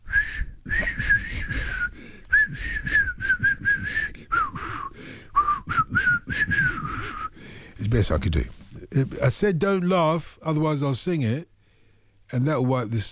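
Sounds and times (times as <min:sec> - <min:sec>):
breaths: 0:00.0 - 0:08.8, 0:11.5 - 0:12.3
person whistling a wavering melody: 0:00.1 - 0:07.4
speech: 0:07.9 - 0:11.5, 0:12.3 - 0:13.1.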